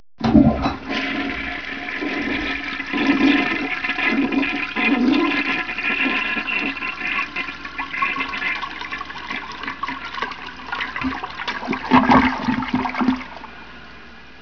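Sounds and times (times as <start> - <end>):
toilet water flush: 0.2 - 13.6.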